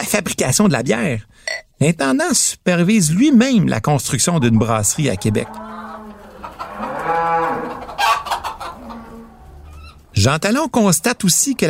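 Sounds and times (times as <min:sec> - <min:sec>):
speech: 0:00.1 - 0:05.9, 0:10.2 - 0:11.6
chickens clucking and squawking in a busy farmyard: 0:04.1 - 0:10.2
farm animals lowing: 0:04.1 - 0:10.2.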